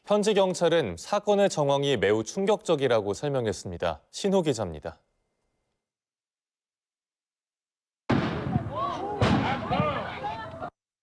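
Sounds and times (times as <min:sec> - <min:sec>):
speech: 0:00.1 - 0:05.1
gunshots in a residential neighbourhood of Erie Pennsylvania USA: 0:08.1 - 0:10.2
agitated voices calling out: 0:08.5 - 0:10.7.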